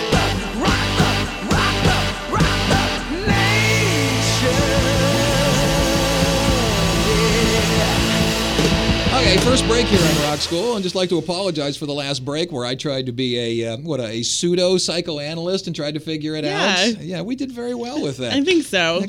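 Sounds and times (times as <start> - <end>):
sustained distorted guitar chords: 0.0 - 10.9
rock song played from an LP: 0.0 - 11.4
punchy drum hits: 0.0 - 11.7
speech: 9.3 - 19.0.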